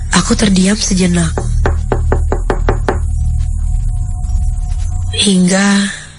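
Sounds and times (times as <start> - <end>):
low steady hum: 0.0 - 6.1
speech: 0.2 - 1.5, 5.2 - 6.0
knocking on a bathroom door: 1.3 - 3.1.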